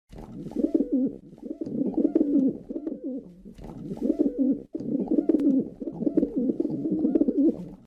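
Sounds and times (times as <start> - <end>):
pigeon cooing: 0.2 - 7.8.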